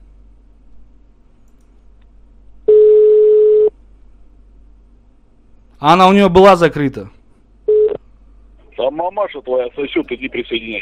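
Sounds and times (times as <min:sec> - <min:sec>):
telephone ringing tone while a call is dialed: 0:02.7 - 0:03.7, 0:07.7 - 0:08.0
speech: 0:05.8 - 0:07.2, 0:08.9 - 0:10.7.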